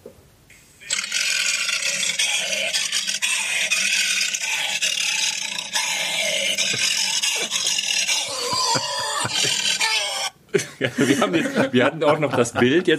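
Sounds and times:
voice actor roaring like a lion into a tin trash can: 0:00.9 - 0:10.4
laughter: 0:06.6 - 0:12.9
speech: 0:10.9 - 0:12.9.

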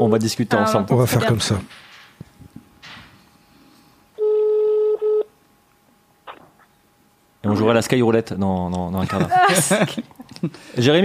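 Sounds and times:
speech: 0:00.0 - 0:01.9, 0:07.6 - 0:11.0
loud steady electronic phone tone: 0:04.2 - 0:05.3
laughter: 0:09.0 - 0:10.6.

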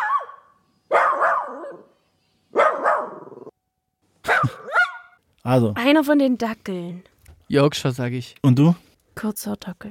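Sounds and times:
Chihuahua barking high yappy barks: 0:00.0 - 0:01.9, 0:02.6 - 0:03.5, 0:04.2 - 0:05.2
speech: 0:05.4 - 0:09.8.

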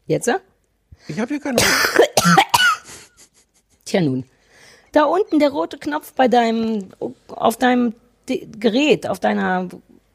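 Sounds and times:
speech: 0:00.1 - 0:02.6, 0:03.9 - 0:04.3, 0:04.9 - 0:09.9
person coughing: 0:01.6 - 0:03.2.

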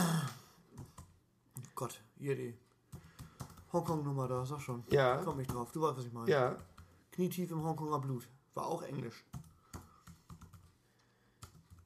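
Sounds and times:
typing on a computer keyboard: 0:00.7 - 0:01.2, 0:02.9 - 0:04.1, 0:09.3 - 0:11.8
speech: 0:01.8 - 0:02.7, 0:03.7 - 0:09.4.

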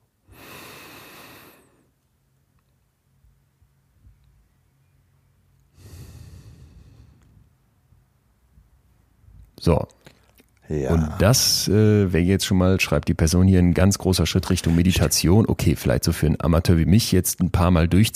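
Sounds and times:
low hush: 0:00.1 - 0:18.1
slow breathing during a closed-eyes relaxation exercise: 0:00.2 - 0:02.0, 0:05.7 - 0:07.6
speech: 0:09.6 - 0:10.1, 0:10.7 - 0:18.1.

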